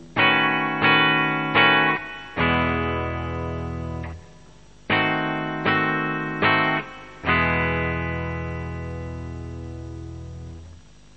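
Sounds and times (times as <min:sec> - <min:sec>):
vii tension chord: 0:00.2 - 0:10.7.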